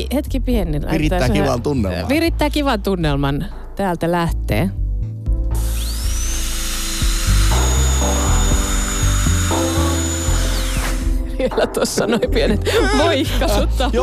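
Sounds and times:
speech: 0.0s - 4.8s, 11.4s - 14.0s
high-pitched dental drill whirring: 5.5s - 11.3s
laughter: 11.2s - 14.0s.

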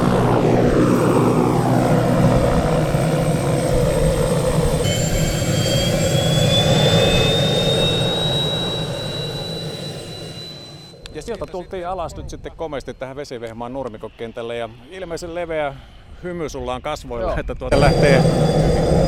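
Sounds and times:
high whining tones of a skydiving plane engine: 0.0s - 15.3s, 17.7s - 19.0s
skydiving plane engine roar at a grass airfield: 0.0s - 16.2s, 17.7s - 19.0s
speech: 11.5s - 18.9s.

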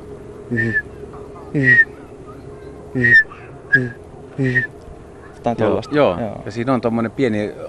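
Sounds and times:
faint hum: 0.0s - 7.6s
person whistling imitation of Eurasian bullfinch call: 0.5s - 0.9s, 1.6s - 1.9s, 3.0s - 4.7s
speech: 0.5s - 1.9s, 2.9s - 4.8s, 5.4s - 7.6s.

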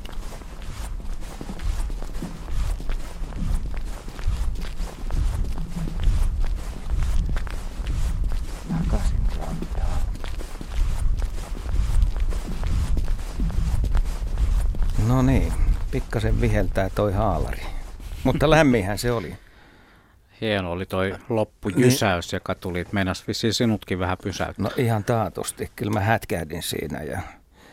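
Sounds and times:
footsteps of a man walking on 15 cm thick lake ice: 0.0s - 19.2s
speech: 16.1s - 19.4s, 20.4s - 27.4s.

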